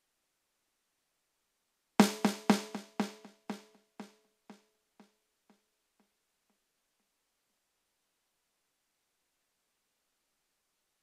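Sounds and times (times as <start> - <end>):
snare drum with stereo delay: 2.0 - 4.1.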